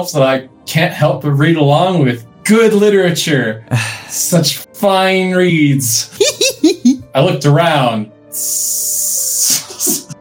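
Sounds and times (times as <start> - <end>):
speech: 0.0 - 6.3, 7.1 - 8.8
laughter: 6.1 - 7.0
person hissing like a snake: 8.3 - 10.1.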